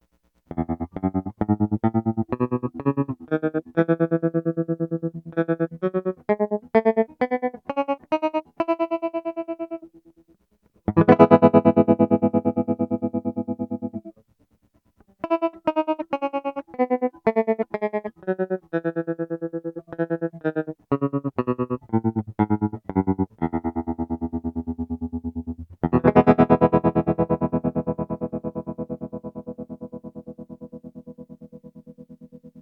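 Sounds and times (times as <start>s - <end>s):
guitars through a tremolo pedal in G major: 0.5s - 10.2s, 10.9s - 14.2s, 15.2s - 32.6s.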